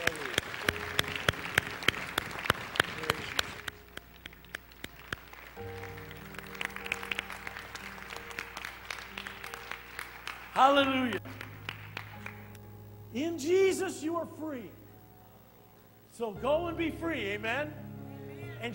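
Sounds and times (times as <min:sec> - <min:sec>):
church audience clapping to praise the Lord: 0:00.0 - 0:12.7
sustained organ or keyboard tones: 0:00.0 - 0:18.7
speech: 0:10.6 - 0:11.2, 0:13.2 - 0:14.8, 0:16.2 - 0:17.8.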